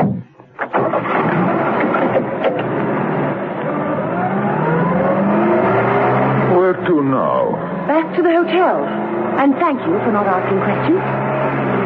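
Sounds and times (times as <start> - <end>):
car engine revving and driving off: 0.0 - 11.8
speech: 8.4 - 11.5.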